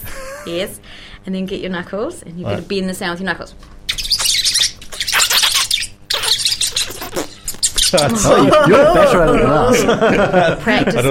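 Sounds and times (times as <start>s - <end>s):
speech: 0.4s - 3.8s, 7.9s - 11.0s
tomtits chirping and squawking: 3.9s - 8.3s
laughter: 7.9s - 11.0s.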